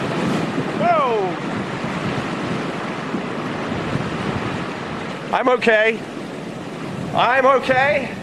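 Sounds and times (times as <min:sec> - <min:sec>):
massive storm-surge ocean wave rushing ashore carrying debris: 0:00.0 - 0:08.2
wind: 0:00.0 - 0:08.2
speech: 0:05.3 - 0:06.2, 0:07.2 - 0:08.2.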